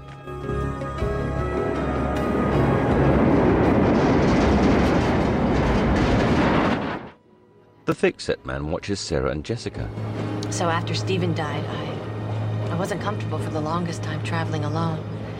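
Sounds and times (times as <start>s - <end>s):
train travelling on rails at night: 1.2s - 7.2s, 9.9s - 15.3s
speech: 7.9s - 11.9s, 12.7s - 15.2s.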